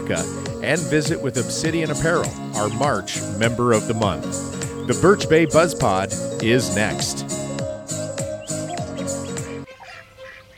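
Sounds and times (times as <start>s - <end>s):
birds chirping and calling: 0.0s - 10.5s
speech: 0.1s - 7.4s.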